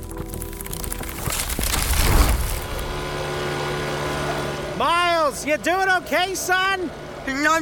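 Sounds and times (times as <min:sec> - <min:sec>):
plane going down with roaring engine noise: 0:02.0 - 0:07.5
speech: 0:04.8 - 0:07.5.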